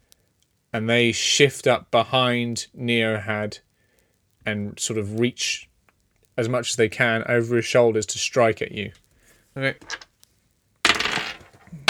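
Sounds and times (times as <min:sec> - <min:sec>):
speech: 0:00.7 - 0:03.7, 0:04.4 - 0:05.7, 0:06.4 - 0:09.0, 0:09.6 - 0:10.0
die clattering onto a hard tabletop: 0:09.8 - 0:10.1, 0:10.8 - 0:11.8.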